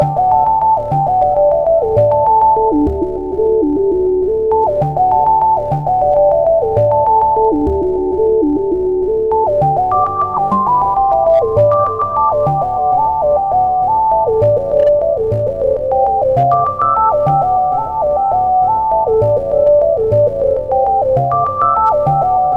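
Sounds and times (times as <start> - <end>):
LG phone ringtone: 0.0 - 22.5.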